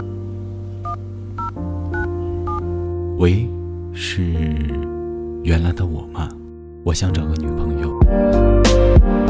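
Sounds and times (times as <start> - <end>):
telephone keypad dialing tones: 0.9 - 2.6
speech: 3.2 - 4.9, 5.4 - 9.2.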